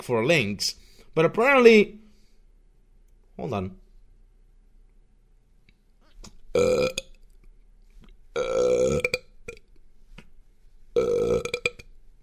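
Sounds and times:
speech: 0.0 - 2.0, 3.4 - 3.8, 6.5 - 7.0
loud burps: 6.5 - 7.1, 8.4 - 9.6, 11.0 - 11.9.

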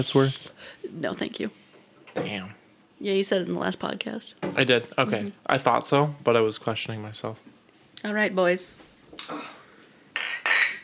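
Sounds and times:
speech: 0.0 - 9.6
glasses clinking together in a toast: 10.1 - 10.8.

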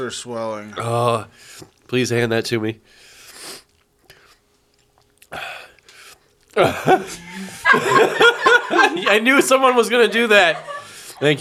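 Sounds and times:
speech: 0.0 - 3.1, 6.6 - 11.3
swallowing food: 0.6 - 1.9, 2.8 - 7.7
crunchy chewing of food: 3.0 - 7.3
people laughing and chuckling: 6.6 - 11.3.

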